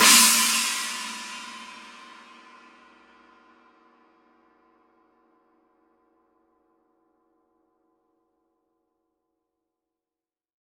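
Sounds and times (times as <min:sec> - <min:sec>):
18-inch china cymbal edge hit: 0:00.0 - 0:02.7.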